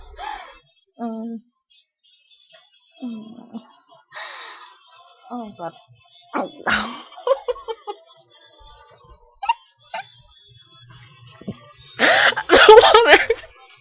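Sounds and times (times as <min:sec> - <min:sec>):
speech: 0:01.0 - 0:01.8, 0:05.3 - 0:07.0
short bursts of stifled laughter: 0:06.4 - 0:08.1, 0:09.4 - 0:10.2, 0:12.0 - 0:13.5.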